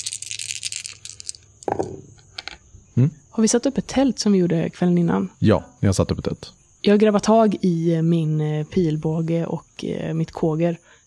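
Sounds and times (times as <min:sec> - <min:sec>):
dice rolled on a hard tabletop during a role-playing game: 0:00.0 - 0:02.6
speech: 0:03.0 - 0:11.0.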